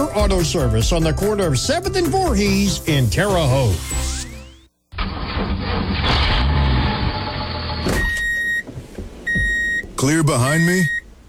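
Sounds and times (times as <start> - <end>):
speech: 0.2 - 4.2, 10.0 - 11.0
diesel engine starting and running: 5.0 - 11.2.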